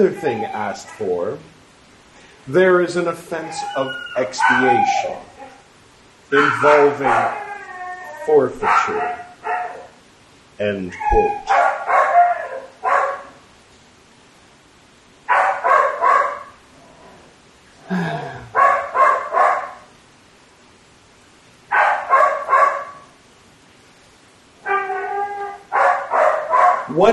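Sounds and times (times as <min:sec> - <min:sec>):
dog whining yelp: 0:00.0 - 0:01.2, 0:03.4 - 0:05.6, 0:06.4 - 0:10.0, 0:10.9 - 0:13.3, 0:21.7 - 0:23.0, 0:24.6 - 0:27.1
speech: 0:00.0 - 0:01.5, 0:02.4 - 0:05.3, 0:06.3 - 0:07.4, 0:08.2 - 0:09.2, 0:10.6 - 0:11.6
dog barking: 0:04.4 - 0:05.6, 0:06.4 - 0:07.4, 0:08.6 - 0:10.0, 0:11.1 - 0:13.4, 0:15.3 - 0:16.6, 0:18.5 - 0:19.9, 0:21.7 - 0:23.2, 0:25.7 - 0:27.0.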